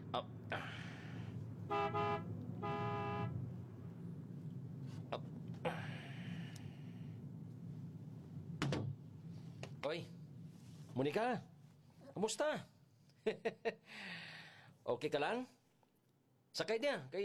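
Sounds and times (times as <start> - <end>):
steady low road and engine rumble: 0.0 - 13.0
speech: 0.1 - 0.9, 9.9 - 10.2, 11.0 - 11.5, 12.2 - 14.3, 14.9 - 15.6, 16.6 - 17.2
car horn toots from a driver honking at a pedestrian: 1.6 - 3.5.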